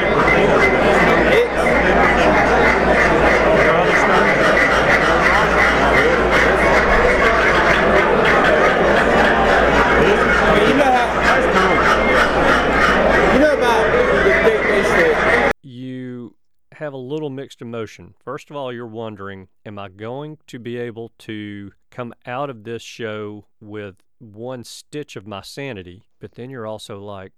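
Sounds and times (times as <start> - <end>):
crowd babble indoors: 0.0 - 15.6
many duck calls from a call maker being blown at a duck call show: 0.0 - 26.7
laughter: 0.0 - 27.3
speech: 17.8 - 27.3.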